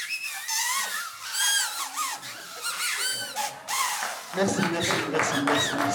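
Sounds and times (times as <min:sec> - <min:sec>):
several homemade paper whistles shrilling: 0:00.0 - 0:05.8.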